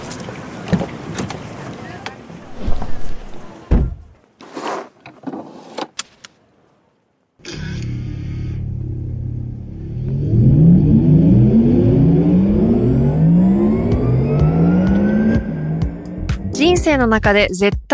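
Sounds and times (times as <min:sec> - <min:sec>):
Porsche sports car engine revving: 0:08.8 - 0:16.6
speech: 0:16.9 - 0:17.9.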